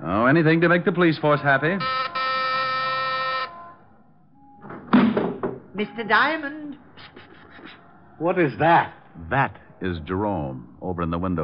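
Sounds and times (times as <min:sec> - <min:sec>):
speech: 0:00.3 - 0:02.2, 0:05.8 - 0:06.8, 0:08.2 - 0:11.4
doorbell buzzing ring: 0:01.8 - 0:03.8.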